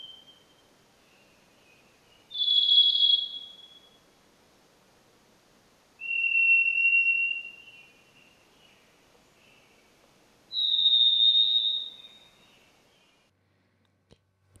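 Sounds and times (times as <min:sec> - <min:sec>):
Varied Thrush song of long buzzy whistled notes: 0:00.0 - 0:04.1, 0:06.0 - 0:09.9, 0:10.5 - 0:13.2.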